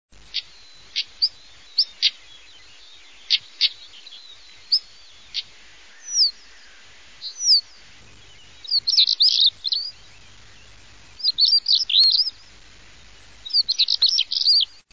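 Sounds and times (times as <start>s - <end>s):
common stonechat singing: 0.2s - 14.9s.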